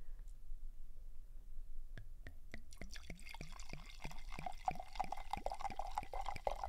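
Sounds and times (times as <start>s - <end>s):
wine glugging into a glass: 2.7s - 6.6s.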